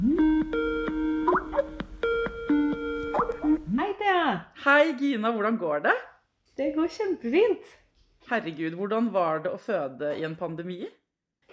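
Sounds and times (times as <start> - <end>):
Skype call ringtone: 0.0 - 4.0
speech: 4.6 - 11.0.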